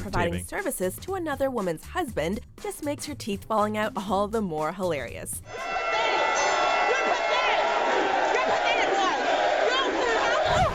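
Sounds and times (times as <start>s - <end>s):
speech: 0.1s - 5.8s
scattered whoops and shouts from the audience: 5.5s - 10.7s
studio audience cheering: 5.5s - 10.7s.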